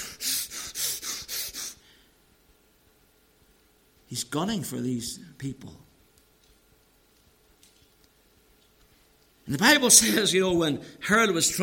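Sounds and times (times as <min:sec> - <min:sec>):
person imitating heavy angry panting: 0:00.0 - 0:02.0
speech: 0:04.1 - 0:05.9, 0:09.5 - 0:11.6.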